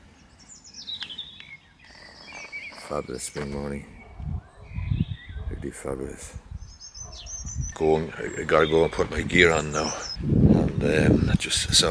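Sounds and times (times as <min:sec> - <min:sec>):
small bird chirping while feeding outdoors: 0:00.1 - 0:05.6, 0:06.5 - 0:10.2
speech: 0:02.9 - 0:04.0, 0:05.7 - 0:06.5, 0:07.8 - 0:11.8.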